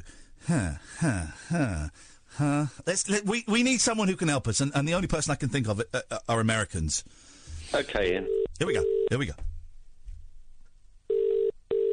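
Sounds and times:
speech: 0:00.5 - 0:09.5
British telephone ringback tone down the line: 0:11.1 - 0:11.9.

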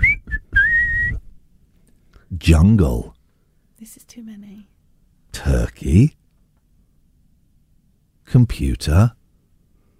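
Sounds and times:
person whistling short notes and a held tone: 0:00.0 - 0:01.3
speech: 0:02.4 - 0:03.2, 0:03.8 - 0:04.8, 0:05.4 - 0:06.2, 0:08.3 - 0:09.2.

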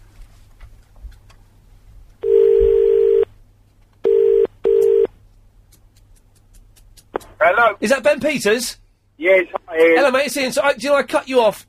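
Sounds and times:
low hum: 0:00.0 - 0:11.6
telephone dialing beeps: 0:02.2 - 0:03.2, 0:04.1 - 0:05.1
speech: 0:07.4 - 0:11.6.

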